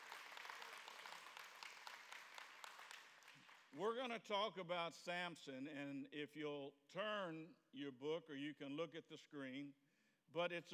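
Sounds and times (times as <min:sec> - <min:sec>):
audience applause: 0:00.0 - 0:03.7
speech: 0:03.7 - 0:10.7.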